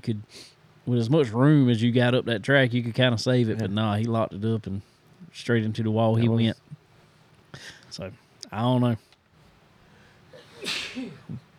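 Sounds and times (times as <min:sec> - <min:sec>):
speech: 0:00.0 - 0:06.7, 0:07.6 - 0:09.1, 0:10.6 - 0:11.5
person sneezing: 0:10.4 - 0:11.4.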